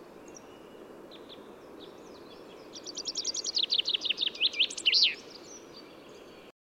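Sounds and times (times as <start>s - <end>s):
common chaffinch Fringilla coelebs singing: 0.0s - 6.5s.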